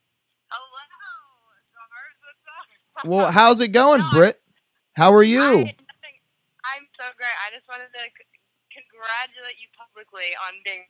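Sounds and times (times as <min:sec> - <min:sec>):
speech: 0:02.3 - 0:04.4, 0:05.0 - 0:05.8, 0:09.0 - 0:10.8
tinny voice from a phone's small speaker on speakerphone: 0:03.0 - 0:04.3, 0:05.0 - 0:05.8.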